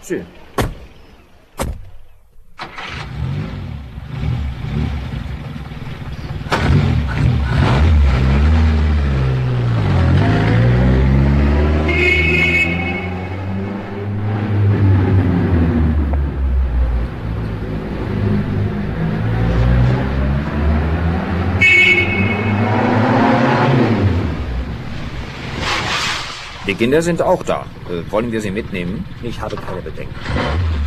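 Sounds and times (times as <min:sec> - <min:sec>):
speech: 0:00.1 - 0:00.4, 0:26.8 - 0:30.8
sharp thuds: 0:00.5 - 0:01.0, 0:01.6 - 0:02.1
car engine revving as the car accelerates: 0:02.6 - 0:30.8.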